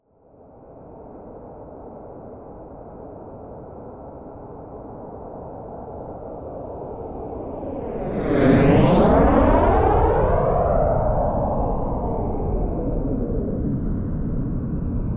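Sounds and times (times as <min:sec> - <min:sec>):
Eurofighter Typhoon military jet fast close flyby: 0:07.3 - 0:15.0.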